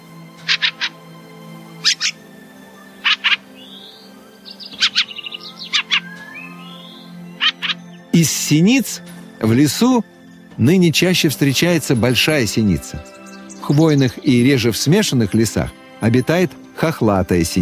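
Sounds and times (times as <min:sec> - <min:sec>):
fieldfare giving harsh chak-chak calls: 0:00.4 - 0:01.0, 0:01.6 - 0:02.2, 0:02.8 - 0:08.1
speech: 0:08.2 - 0:17.5.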